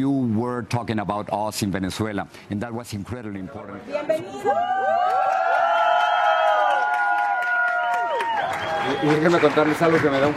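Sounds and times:
speech: 0.0s - 5.2s, 8.9s - 10.3s
cheering voices: 4.4s - 10.3s
large audience applauding: 4.7s - 10.3s
shrill whistles: 7.9s - 9.2s.

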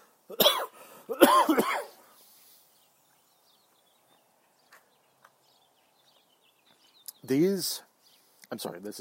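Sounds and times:
person coughing from choking on a sip of coffee: 0.3s - 2.0s.

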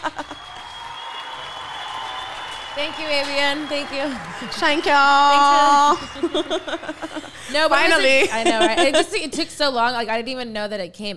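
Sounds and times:
laughter: 0.0s - 0.6s, 3.9s - 9.4s
applause: 0.0s - 7.6s
speech: 2.8s - 11.1s.

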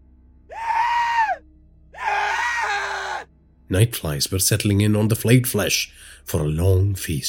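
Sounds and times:
old man screaming in horror: 0.5s - 1.4s, 2.0s - 3.3s
speech: 3.7s - 7.2s.

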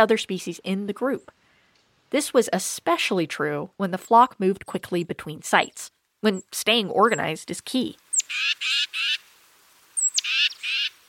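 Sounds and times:
speech: 0.0s - 1.4s, 2.1s - 9.1s
titmouse scolding calls: 8.1s - 9.2s, 10.0s - 11.0s.

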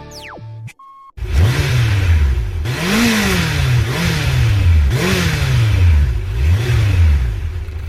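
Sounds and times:
brief beep: 0.0s - 1.2s
motorbike engine revving hard: 1.2s - 7.8s.

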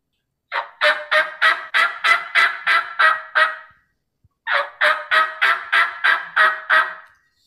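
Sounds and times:
turkey hen yelps on a diaphragm mouth call: 0.5s - 3.7s, 4.5s - 7.1s.

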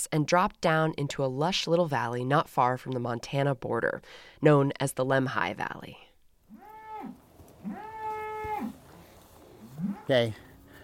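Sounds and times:
speech: 0.0s - 6.0s, 9.8s - 10.4s
cow mooing: 6.5s - 10.8s.

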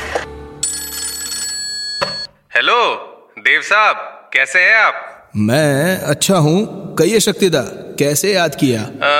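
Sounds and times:
telephone bell ringing: 0.6s - 2.4s
speech: 2.6s - 9.1s.

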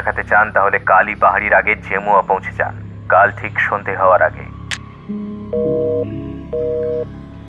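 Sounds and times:
speech: 0.0s - 4.5s, 5.1s - 7.2s
low steady musical background: 0.0s - 7.4s
telephone on a desk in Kolkata ringing with electronic tone bursts: 5.5s - 7.1s.

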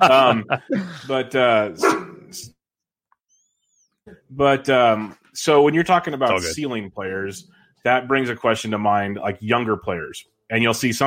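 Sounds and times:
laughter: 0.0s - 1.8s
speech: 0.0s - 2.6s, 4.1s - 11.0s
dog barking excitedly with high yappy barks and whiny yelps: 1.8s - 2.2s.

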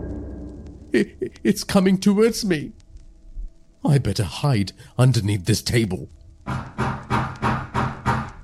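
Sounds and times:
speech: 0.9s - 2.8s, 3.8s - 6.7s
heavy booming bangs on a door: 6.5s - 8.4s.

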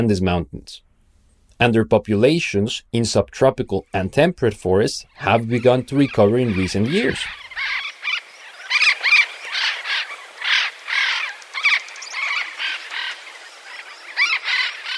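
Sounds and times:
speech: 0.0s - 0.9s, 1.6s - 7.8s
parrots of an Andean species from Colombia squawking: 5.1s - 14.9s.

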